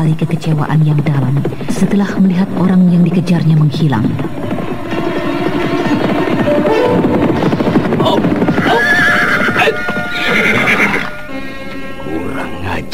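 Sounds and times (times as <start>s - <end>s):
speech: 0.0s - 4.5s
ridden horses clopping hoofbeats: 0.2s - 11.1s
horses neighing and whinnying: 7.1s - 11.1s.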